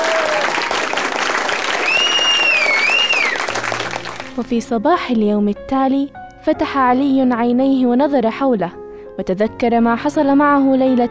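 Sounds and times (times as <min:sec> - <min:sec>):
large theatre audience applauding after a song in a play: 0:00.0 - 0:04.4
bright whistle-like tone rising and falling: 0:01.8 - 0:03.4
speech: 0:04.4 - 0:11.1.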